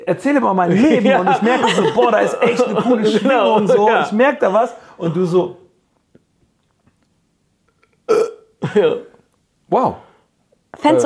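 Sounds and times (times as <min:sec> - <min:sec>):
speech: 0:00.0 - 0:05.6, 0:08.1 - 0:09.1, 0:09.7 - 0:10.1, 0:10.8 - 0:11.0
laughter: 0:00.6 - 0:04.3
burp: 0:07.7 - 0:09.2
throaty voiced belch: 0:07.7 - 0:09.2.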